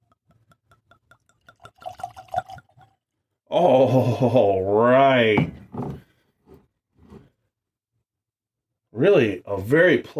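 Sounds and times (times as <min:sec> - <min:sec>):
drink glugging out of a bottle: 0:00.0 - 0:03.1
speech: 0:03.5 - 0:05.9, 0:09.0 - 0:10.1.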